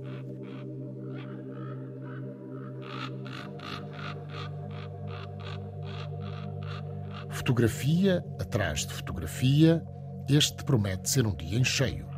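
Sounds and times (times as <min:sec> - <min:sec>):
ravens croaking in the Serra da Estrela Natural Park, Portugal: 0:00.0 - 0:08.2
speech: 0:07.4 - 0:12.1.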